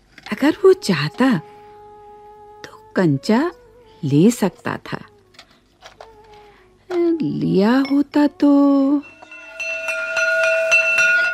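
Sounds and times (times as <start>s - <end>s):
speech: 0.3s - 1.5s, 3.0s - 5.1s, 6.9s - 9.1s
school bell ringing: 8.9s - 11.3s.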